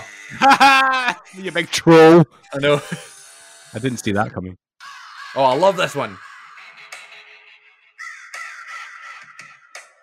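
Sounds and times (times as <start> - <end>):
laughter: 0.3 - 1.9, 2.6 - 3.2
speech: 0.3 - 3.1, 3.7 - 4.6, 5.3 - 6.2
harsh raspy crow caws: 4.8 - 10.0.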